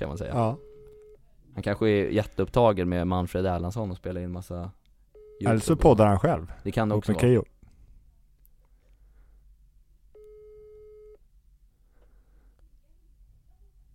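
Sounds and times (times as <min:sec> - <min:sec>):
speech: 0:00.0 - 0:00.7, 0:01.6 - 0:04.8, 0:05.4 - 0:07.5
telephone ringing tone on an unanswered call to a mobile phone: 0:05.2 - 0:05.6, 0:10.2 - 0:11.2.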